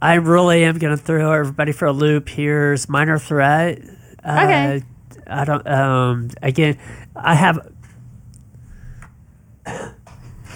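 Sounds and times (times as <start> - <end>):
speech: 0.0 - 7.8, 9.6 - 10.0
steady low hum: 0.0 - 10.5
person coughing: 9.7 - 10.0.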